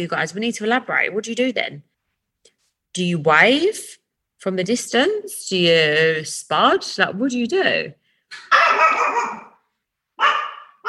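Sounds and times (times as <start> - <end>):
speech: 0.0 - 1.9, 2.9 - 9.4
dog barking at the gate: 8.3 - 9.6, 10.2 - 10.8.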